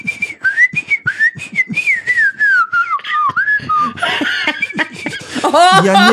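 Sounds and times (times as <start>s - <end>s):
person whistling a wavering tune: 0.0s - 5.3s
person laughing: 3.0s - 6.1s
speech: 5.5s - 6.1s.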